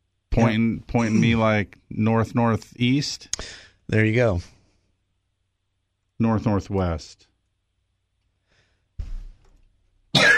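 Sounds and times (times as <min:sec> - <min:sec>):
speech: 0:00.4 - 0:04.6, 0:06.2 - 0:07.3
person coughing: 0:01.0 - 0:01.4, 0:10.2 - 0:10.3.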